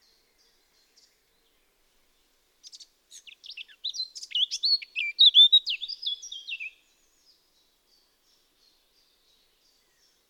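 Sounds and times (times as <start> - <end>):
Eurasian blackcap Sylvia atricapilla singing: 2.6 - 6.8.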